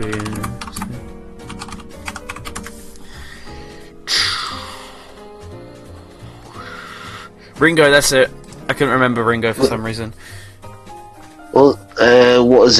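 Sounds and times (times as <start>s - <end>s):
speech: 0.0s - 0.5s, 7.6s - 10.4s, 11.6s - 12.7s
typing on a computer keyboard: 0.0s - 0.9s, 1.5s - 2.7s
steady music: 0.0s - 12.7s.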